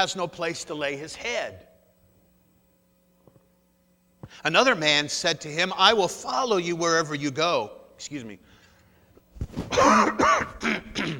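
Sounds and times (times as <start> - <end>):
speech: 0.0 - 1.7, 4.3 - 8.5, 9.6 - 10.9
rough throaty coughs: 9.6 - 11.1.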